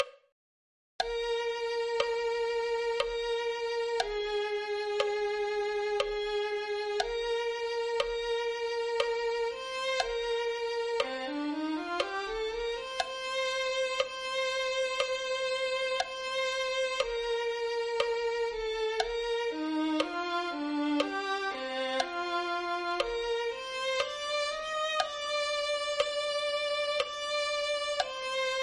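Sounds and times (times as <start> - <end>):
violin: 1.0 - 28.6.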